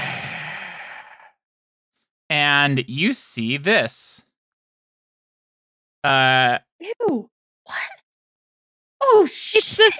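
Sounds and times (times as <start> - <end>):
voice imitating heavy creature breathing: 0.0 - 1.4
speech: 2.3 - 4.3, 6.0 - 8.0, 9.0 - 9.9.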